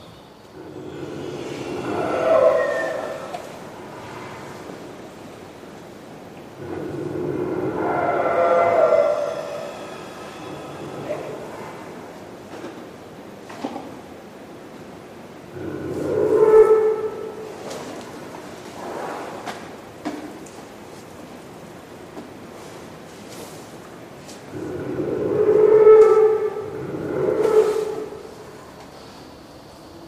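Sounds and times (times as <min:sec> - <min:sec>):
elephants snoring in deep sleep: 0:00.5 - 0:05.3, 0:06.5 - 0:12.8, 0:15.5 - 0:18.2, 0:24.4 - 0:28.7.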